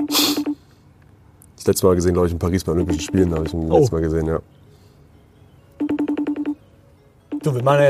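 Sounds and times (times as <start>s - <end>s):
speech: 0.0s - 0.4s, 1.6s - 4.6s, 7.4s - 7.8s
FaceTime call ringing tone of bright electronic beeps: 0.0s - 0.8s, 2.6s - 3.9s, 5.2s - 7.8s.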